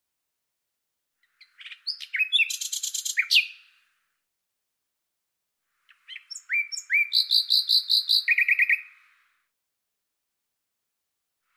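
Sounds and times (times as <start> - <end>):
common nightingale song with chips, slurred whistles and buzzy trill: 1.2 - 4.2, 5.7 - 9.5.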